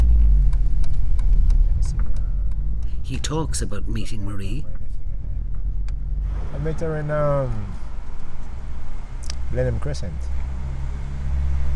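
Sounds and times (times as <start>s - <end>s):
car engine humming inside a vehicle driving around West London: 0.0s - 11.7s
road rumble: 0.0s - 11.7s
speech: 3.1s - 4.8s, 6.6s - 7.8s, 9.5s - 10.4s.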